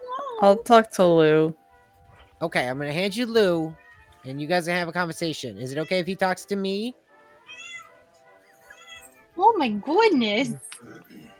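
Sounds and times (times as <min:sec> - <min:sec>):
speech: 0:00.4 - 0:01.6, 0:02.4 - 0:07.0, 0:09.4 - 0:11.2
cat meowing: 0:07.4 - 0:08.0, 0:08.6 - 0:09.2.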